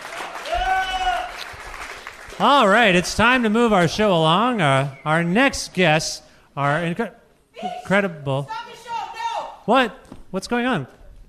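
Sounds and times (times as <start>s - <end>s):
audience applause: 0.0s - 5.0s
sustained whistle or cheer: 0.4s - 1.4s
speech: 2.4s - 8.6s, 9.6s - 11.0s.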